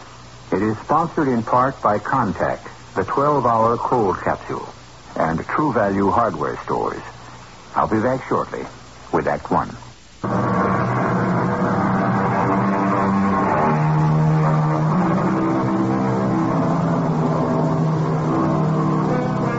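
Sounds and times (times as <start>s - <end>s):
speech: 0.6s - 7.1s, 7.7s - 10.4s
twin diesel engines of a 50-foot sport-fishing motorboat droning: 10.2s - 19.5s.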